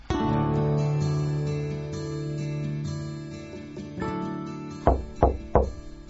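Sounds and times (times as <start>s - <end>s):
soft sustained music: 0.0s - 6.0s
firm knocking on a front door: 4.9s - 6.0s.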